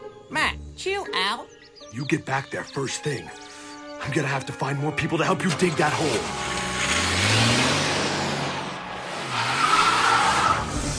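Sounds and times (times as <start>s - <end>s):
speech: 0.3s - 6.5s
broad road and tire noise: 4.7s - 10.9s
truck engine rumbling and revving as it pulls off: 5.0s - 10.9s.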